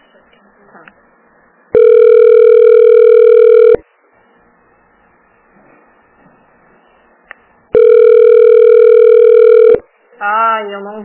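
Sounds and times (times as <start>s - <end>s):
faint noise: 0.0s - 11.0s
telephone ringing tone: 1.8s - 3.8s, 7.7s - 9.8s.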